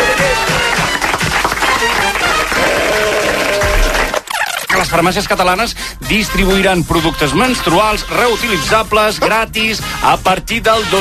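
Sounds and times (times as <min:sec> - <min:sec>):
crowd applauding: 0:00.0 - 0:04.3
speech: 0:04.9 - 0:10.9.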